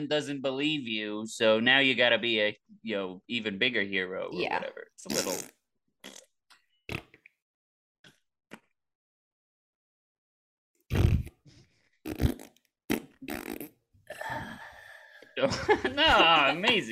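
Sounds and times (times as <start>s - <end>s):
speech: 0.0s - 6.2s, 15.4s - 16.8s
voice imitating flatulence with mouth-made fart noises: 5.1s - 6.3s, 6.9s - 7.3s, 10.9s - 13.8s
laughter: 15.4s - 16.8s.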